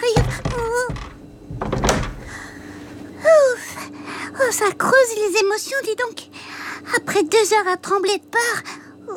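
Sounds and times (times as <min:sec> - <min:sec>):
door being pushed shut quickly: 0:00.0 - 0:02.4
speech: 0:04.6 - 0:06.3, 0:06.9 - 0:09.1.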